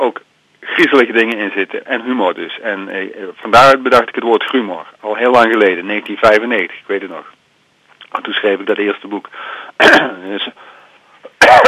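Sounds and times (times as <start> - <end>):
speech: 0.0 - 7.4, 8.1 - 10.7
harsh cough from a tickle in the throat: 9.8 - 10.3
throat clearing from a tickle in the throat: 9.8 - 10.3.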